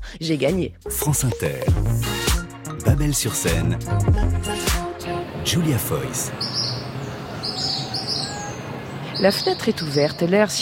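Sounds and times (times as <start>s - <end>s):
speech: 0.1s - 6.7s, 9.2s - 10.6s
several birds chirping and squabbling outdoors: 5.9s - 10.6s.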